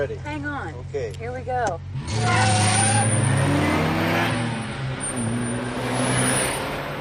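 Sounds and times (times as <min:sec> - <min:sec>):
speech: 0:00.0 - 0:04.4
car engine revving and accelerating: 0:01.8 - 0:07.0.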